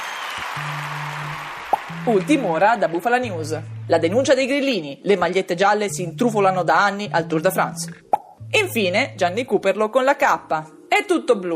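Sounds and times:
crowd applauding in the streets of Rome: 0.0 - 3.6
speech: 2.0 - 11.5.

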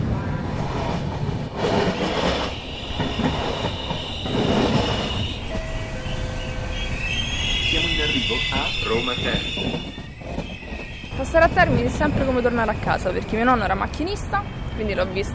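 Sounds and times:
train arriving at a railway station platform rumbling past: 0.0 - 15.3
thin metallic train wheel squeals: 1.8 - 15.3
speech: 8.3 - 10.0, 11.3 - 15.3.

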